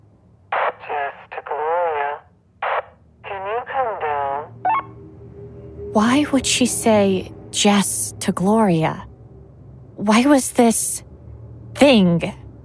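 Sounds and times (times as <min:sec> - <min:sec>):
low hum: 0:00.0 - 0:12.6
tinny band-limited voice over a two-way radio: 0:00.6 - 0:04.5
speech: 0:06.0 - 0:09.1, 0:10.0 - 0:11.1, 0:11.8 - 0:12.4.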